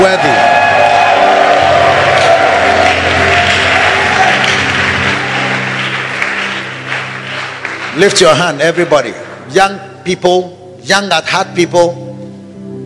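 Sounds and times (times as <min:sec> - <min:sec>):
church congregation cheering during a worship service: 0:00.0 - 0:09.5
church congregation clapping during a worship service: 0:00.0 - 0:10.0
speech: 0:08.0 - 0:12.0.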